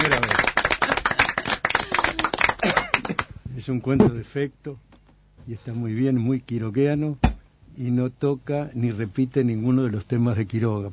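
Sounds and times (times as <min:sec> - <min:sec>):
small audience clapping: 0:00.0 - 0:03.3
speech: 0:03.7 - 0:04.9, 0:05.5 - 0:10.9.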